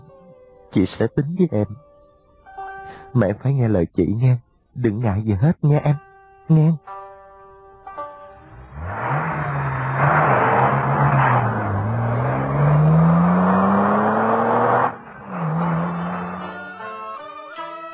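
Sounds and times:
speech: 0.7 - 1.9, 3.1 - 7.0
car driving away: 8.3 - 16.6.

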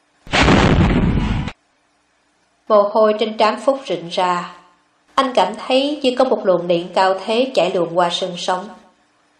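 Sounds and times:
rocket explosion blasting up earth and rock: 0.3 - 1.6
speech: 2.7 - 4.6, 5.2 - 8.8.

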